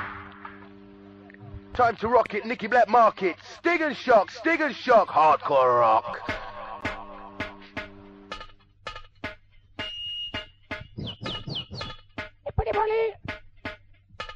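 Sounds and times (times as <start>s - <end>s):
steady low hum: 0.3s - 14.3s
speech: 1.8s - 6.2s
laughter: 1.9s - 2.9s, 4.3s - 7.7s
parrot squawking and chirping in a recording studio: 9.9s - 12.2s.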